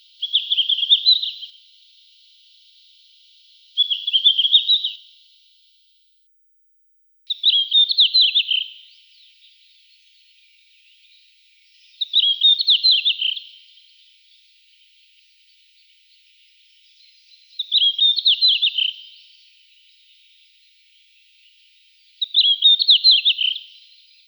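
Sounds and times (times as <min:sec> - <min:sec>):
red-flanked bluetail song: 0:00.0 - 0:01.6, 0:03.7 - 0:05.1, 0:07.3 - 0:13.8, 0:16.8 - 0:19.3, 0:22.2 - 0:24.2.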